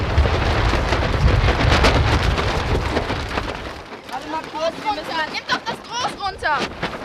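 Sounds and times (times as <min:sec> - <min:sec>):
strong wind buffeting a sailboat's sail on the Elbe at Wedel: 0:00.0 - 0:07.0.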